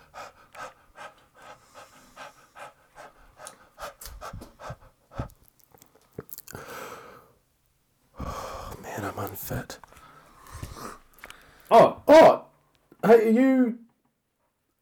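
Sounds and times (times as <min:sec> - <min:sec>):
person panting heavily from jogging: 0:00.0 - 0:05.4, 0:06.5 - 0:07.3, 0:08.2 - 0:08.9, 0:10.0 - 0:11.7
speech: 0:09.2 - 0:09.9, 0:11.7 - 0:12.3, 0:13.2 - 0:13.8.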